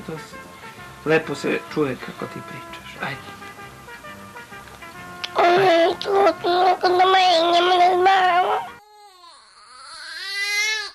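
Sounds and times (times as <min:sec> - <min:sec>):
speech: 0:00.0 - 0:03.4, 0:05.6 - 0:08.7
19-day-old baby boy crying in loud wails: 0:05.3 - 0:10.9.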